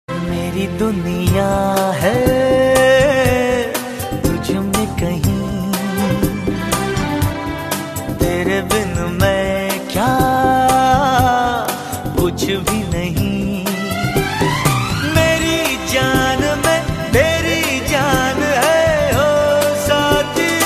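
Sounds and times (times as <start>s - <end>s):
classical Bollywood song ringtone: 0.1s - 20.6s.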